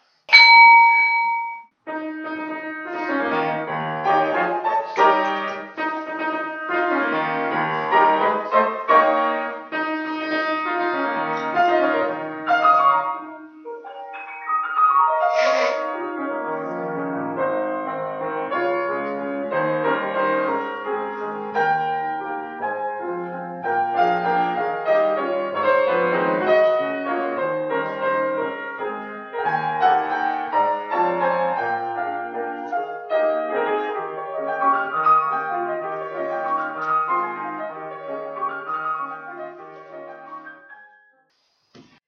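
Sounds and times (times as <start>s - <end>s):
hand bell rung to start service: 0.3s - 1.7s
instrumental music playing steadily: 0.3s - 41.1s.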